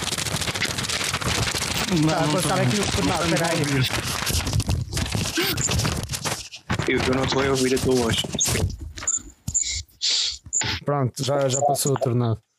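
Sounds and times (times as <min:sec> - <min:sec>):
sheets of paper being handled, crinkling and rustling: 0:00.0 - 0:09.3
speech: 0:01.9 - 0:04.6, 0:06.9 - 0:08.8, 0:10.9 - 0:12.5.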